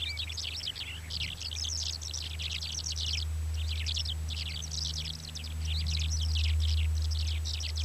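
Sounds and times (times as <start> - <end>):
male Mongolian lark Melanocorypha mongolica singing bubbling high twittering notes: 0.0 - 7.8
steady low droning noise: 0.0 - 7.8.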